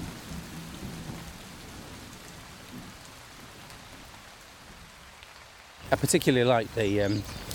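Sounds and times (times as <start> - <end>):
stream water rushing beneath a bridge: 5.8 - 7.5
speech: 5.9 - 7.5.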